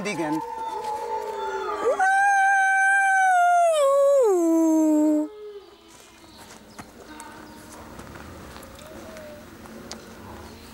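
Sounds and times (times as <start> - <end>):
speech: 0.0 - 0.6
wolf howling in summer heat: 0.0 - 5.7.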